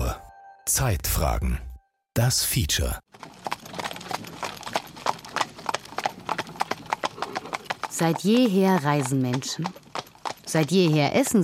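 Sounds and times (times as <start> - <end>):
speech: 0.7 - 3.4, 8.0 - 9.8, 10.5 - 11.4
horse hooves clip-clopping on a hard surface at walking pace: 3.1 - 11.4.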